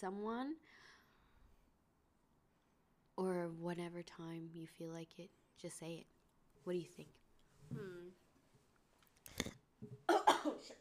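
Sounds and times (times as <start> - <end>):
speech: 0.0 - 0.9, 3.2 - 8.2
person coughing: 10.1 - 10.7.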